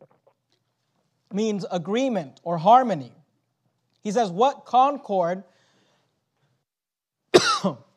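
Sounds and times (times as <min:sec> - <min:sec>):
speech: 0:01.3 - 0:03.2, 0:04.0 - 0:05.5, 0:07.6 - 0:07.8
preacher coughing and clearing his throat mid-sermon: 0:07.3 - 0:07.9.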